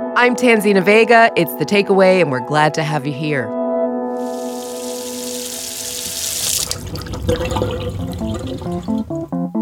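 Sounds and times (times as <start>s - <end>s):
speech: 0.2s - 3.5s, 7.3s - 8.1s
tap running into a sink: 4.2s - 9.3s
water splashing and gurgling in a filling basin: 4.2s - 9.5s.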